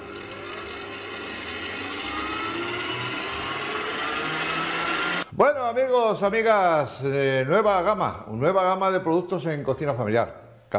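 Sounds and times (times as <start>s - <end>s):
electric mixer beating a mixture at maximum speed: 0.0s - 5.3s
speech: 5.4s - 10.7s.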